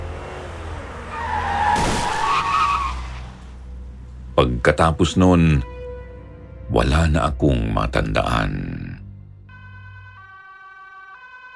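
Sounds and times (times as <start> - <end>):
car tires skidding: 0.0 - 4.0
car engine rumbling: 0.0 - 4.8
speech: 4.4 - 5.7, 6.7 - 8.9.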